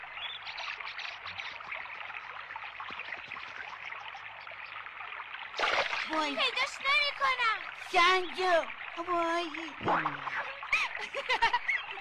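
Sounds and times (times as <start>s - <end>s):
river water flowing and babbling: 0.0s - 11.9s
river water splash: 5.5s - 6.9s, 9.7s - 11.0s
speech: 6.1s - 10.4s, 11.2s - 11.7s
laughter: 10.7s - 11.9s.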